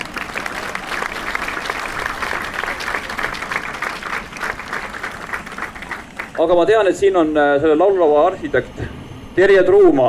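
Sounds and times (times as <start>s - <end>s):
audience clapping: 0.0s - 6.5s
speech: 6.4s - 10.0s.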